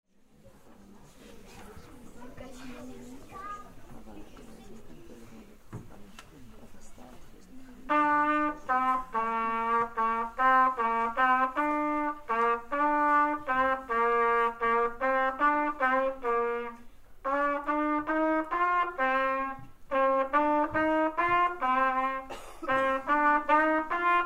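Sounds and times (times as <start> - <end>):
trumpet: 7.8 - 24.2.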